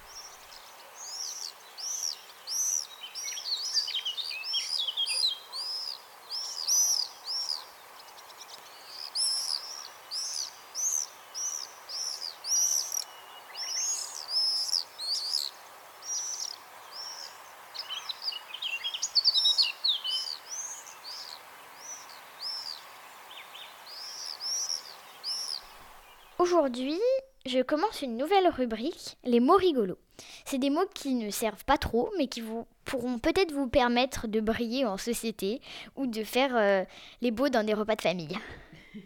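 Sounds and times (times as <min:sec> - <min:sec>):
common swifts screaming calls: 0:00.0 - 0:26.4
faint steady hiss: 0:00.0 - 0:39.0
speech: 0:26.4 - 0:39.0.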